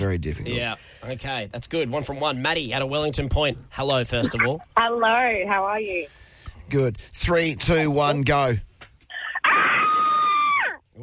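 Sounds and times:
speech: 0.0s - 8.7s
person screaming high-pitched: 9.2s - 10.8s.

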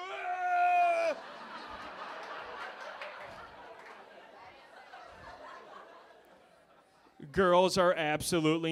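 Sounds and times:
woman screaming high-pitched: 0.0s - 1.2s
murmur of laughter and chatter: 1.0s - 7.2s
speech: 7.3s - 8.7s.

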